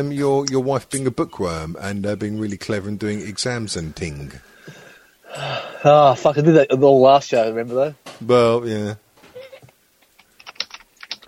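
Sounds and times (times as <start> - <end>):
speech: 0.0 - 9.0
rapid typing on a laptop keyboard: 10.1 - 11.2.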